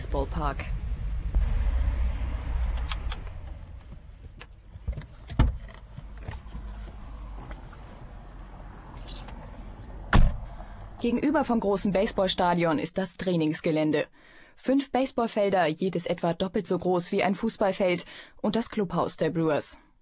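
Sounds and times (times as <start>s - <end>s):
car engine and road rumble heard from inside: 0.0s - 12.8s
speech: 0.1s - 0.8s, 11.0s - 19.8s.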